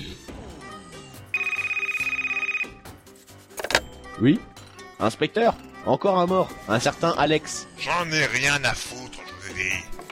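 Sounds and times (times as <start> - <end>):
soft music: 0.0 - 10.1
telephone ringing: 1.3 - 2.9
speech: 4.2 - 9.0, 9.6 - 9.9.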